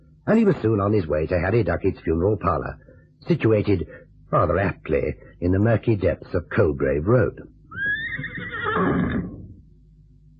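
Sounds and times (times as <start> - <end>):
speech: 0.2 - 7.5
horse whinnying as it shies: 7.7 - 9.6.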